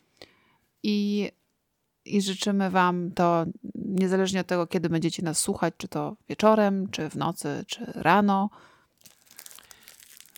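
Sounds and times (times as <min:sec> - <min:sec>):
speech: 0:00.8 - 0:01.4, 0:02.0 - 0:08.7
thin aluminium foil crinkled and folded into a foil hat: 0:08.9 - 0:10.3.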